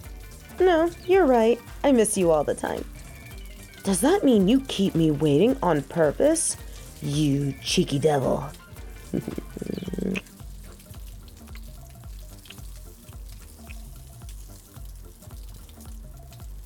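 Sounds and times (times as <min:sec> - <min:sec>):
coffee maker sputtering and gurgling as it finishes brewing: 0:00.0 - 0:16.6
speech: 0:00.6 - 0:03.0, 0:03.8 - 0:09.5.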